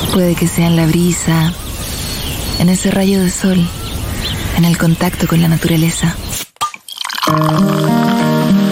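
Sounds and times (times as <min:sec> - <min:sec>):
speech: 0:00.1 - 0:01.7, 0:02.6 - 0:03.8, 0:04.6 - 0:06.3, 0:07.3 - 0:08.0
Cusqueña beer bottle opening: 0:06.4 - 0:08.3
Cusqueña beer pouring from a bottle: 0:06.6 - 0:08.6.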